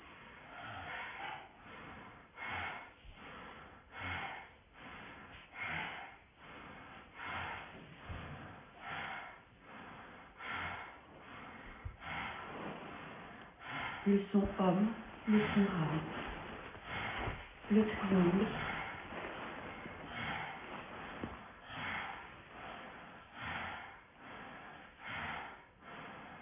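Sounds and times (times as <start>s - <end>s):
rapid forceful bellows breaths of Bhastrika yoga breathing: 0.0s - 26.3s
speech: 14.1s - 16.2s, 17.7s - 18.7s.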